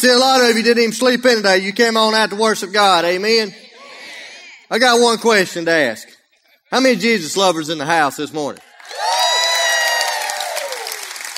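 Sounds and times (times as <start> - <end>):
speech: 0.0 - 3.6, 4.7 - 6.1, 6.7 - 9.1
steady clapping: 8.5 - 11.3
large indoor church audience yelling and cheering: 8.7 - 11.3.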